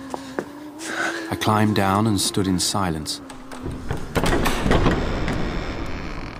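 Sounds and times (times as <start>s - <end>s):
speech: 1.3s - 4.1s
heavy castle door opening with a grinding rumble: 3.2s - 6.3s.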